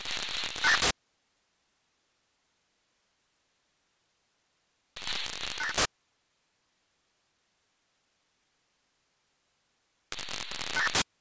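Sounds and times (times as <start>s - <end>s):
unknown radio signal: 0.0s - 1.0s, 5.0s - 5.9s, 10.1s - 11.1s.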